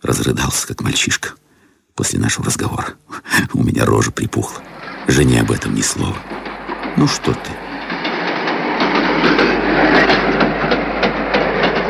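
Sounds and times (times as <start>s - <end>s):
speech: 0.0s - 1.4s, 2.0s - 7.6s
moving train wheels clattering over rail joints: 3.8s - 11.8s.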